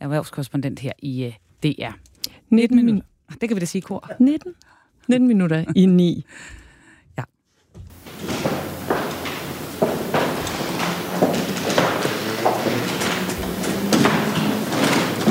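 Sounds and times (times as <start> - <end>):
speech: 0.1 - 6.6
shoes stepping on a palace floor in Oslo while people move a royal coffin: 7.8 - 15.2.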